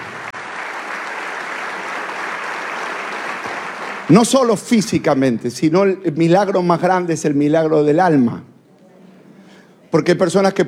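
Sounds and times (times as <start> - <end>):
audience applauding: 0.0 - 4.5
speech: 4.1 - 8.5, 9.9 - 10.6.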